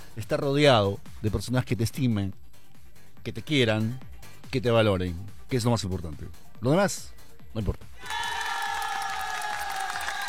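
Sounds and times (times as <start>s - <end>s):
speech: 0.2s - 2.4s, 3.2s - 7.9s
audience applauding: 8.0s - 10.2s
cheers and whoops: 8.0s - 10.2s.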